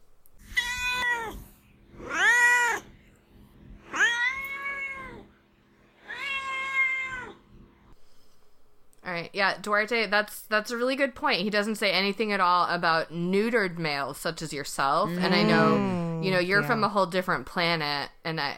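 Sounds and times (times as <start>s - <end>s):
domestic cat meowing: 0.4s - 1.4s, 3.9s - 5.2s, 6.0s - 7.4s
speech: 9.3s - 18.5s.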